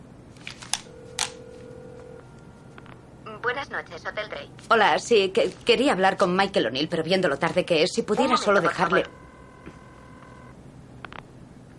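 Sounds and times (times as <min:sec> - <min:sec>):
steady low telephone tone: 0:00.8 - 0:03.0, 0:08.3 - 0:10.6
speech: 0:03.4 - 0:09.2.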